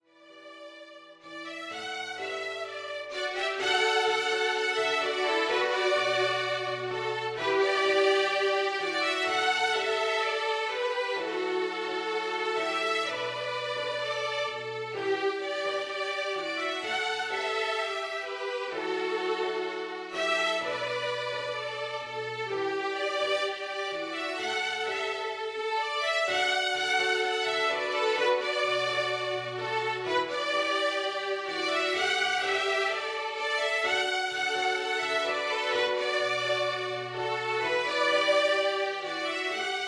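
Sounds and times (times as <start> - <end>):
violin duet: 0.0 - 39.8
piano accompaniment: 0.6 - 39.8.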